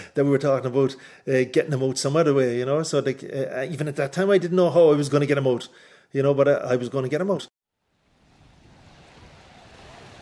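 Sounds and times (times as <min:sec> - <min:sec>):
speech: 0:00.2 - 0:07.5
constant windy rush: 0:07.9 - 0:10.2
waves lapping at a harbor: 0:08.1 - 0:10.2.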